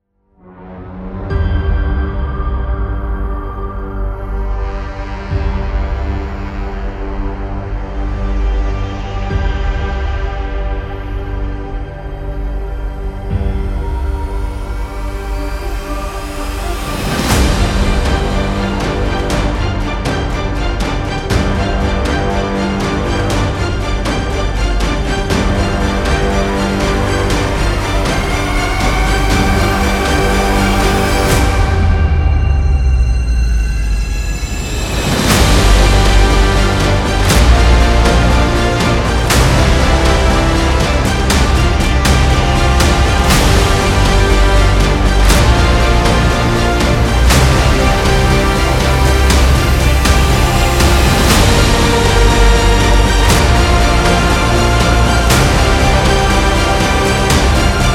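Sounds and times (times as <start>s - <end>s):
cinema trailer audio: 0.0s - 57.9s.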